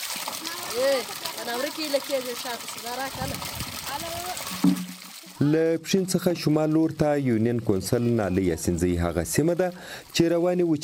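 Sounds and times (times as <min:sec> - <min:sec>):
water trickling and splashing into containers at a water borehole: 0:00.0 - 0:10.8
speech: 0:00.2 - 0:04.8, 0:05.4 - 0:10.8
children's voices chattering while filling water containers at a borehole: 0:00.3 - 0:04.5.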